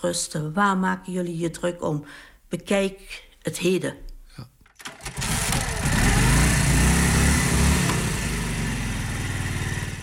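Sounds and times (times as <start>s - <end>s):
speech: 0.0s - 4.5s
old 1942 Harley-Davidson motorcycle engine rumbling: 4.8s - 10.0s.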